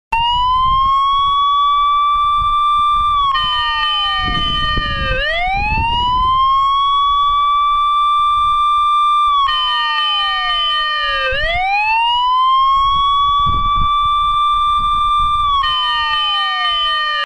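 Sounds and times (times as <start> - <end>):
siren: 0.1 - 17.2.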